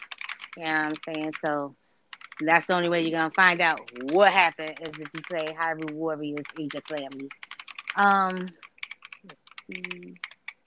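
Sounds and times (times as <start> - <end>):
typing on a computer keyboard: 0.0 - 10.6
speech: 0.6 - 1.8, 2.4 - 7.4, 8.0 - 10.3
person humming: 9.7 - 10.2.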